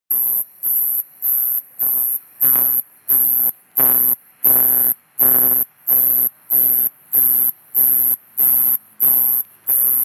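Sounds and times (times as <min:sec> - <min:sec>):
adult brown male Neoconocephalus katydid calling: 0:00.1 - 0:10.0.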